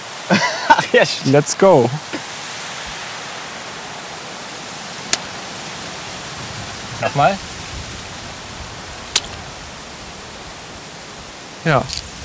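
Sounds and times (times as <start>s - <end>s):
wind and water rushing at a large puddle: 0.0s - 12.2s
laughter: 0.3s - 1.2s
speech: 0.3s - 2.2s, 7.0s - 7.5s, 11.6s - 12.1s
sharp clicks: 9.1s - 9.4s.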